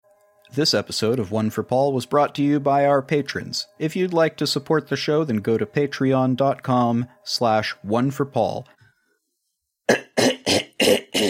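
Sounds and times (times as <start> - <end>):
speech: 0.5 - 8.8
harsh throaty coughs: 9.9 - 11.2.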